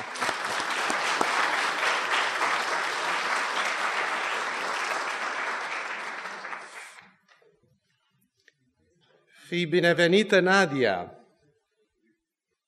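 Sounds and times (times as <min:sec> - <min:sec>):
congregation applauding: 0:00.0 - 0:07.2
speech: 0:09.5 - 0:11.2.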